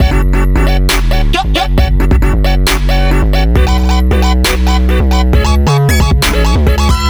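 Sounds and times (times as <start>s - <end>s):
instrumental music loop: 0.0s - 7.0s.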